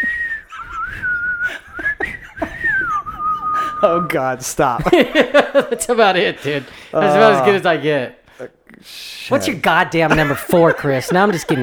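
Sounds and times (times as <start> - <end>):
laughter: 0.0 - 4.0, 4.7 - 7.6, 10.0 - 11.6
person attempting to whistle: 0.0 - 4.0
speech: 3.8 - 11.6.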